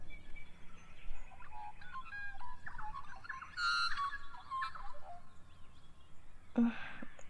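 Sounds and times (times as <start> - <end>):
magpie calling with warbling fluting notes: 1.3 - 5.5
brief breathy sound: 6.6 - 7.2.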